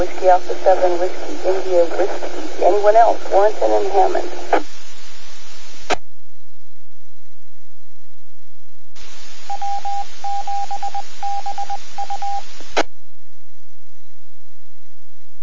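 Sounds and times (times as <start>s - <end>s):
speech: 0.0s - 4.7s, 9.7s - 13.0s
hissing radio static from a radio transmitter: 0.0s - 6.0s, 9.0s - 12.9s
radio transmitter microphone click: 5.8s - 6.1s
touch-tone beeps over radio static: 9.5s - 12.4s.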